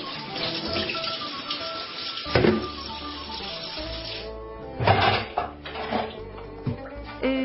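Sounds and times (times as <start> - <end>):
water running from a tap: 0.0 - 4.3
clinks and splashes: 0.0 - 6.8.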